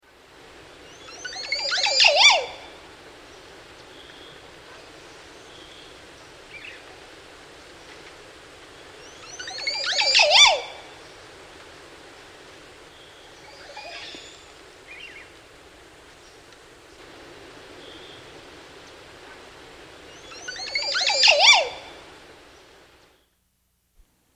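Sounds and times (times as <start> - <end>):
Montezuma oropendola calling in South America: 0.8 - 6.9, 8.8 - 11.2, 12.9 - 15.3, 20.0 - 22.1.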